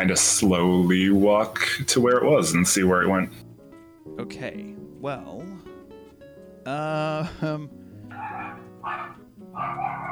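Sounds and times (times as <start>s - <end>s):
speech: 0.1s - 3.5s, 4.1s - 5.7s, 6.6s - 10.1s
dog whining: 8.1s - 10.1s.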